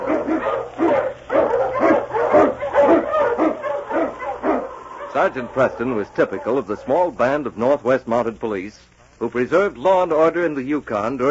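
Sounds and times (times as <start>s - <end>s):
husky sled dog barking: 0.0s - 7.2s
faint steady hum: 0.0s - 11.2s
speech: 5.2s - 11.2s.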